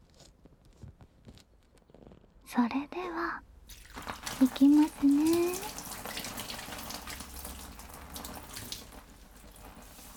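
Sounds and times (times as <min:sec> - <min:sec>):
speech: 0:02.5 - 0:03.5, 0:04.4 - 0:05.8
hot water running from a tap during a hair wash: 0:03.7 - 0:10.1.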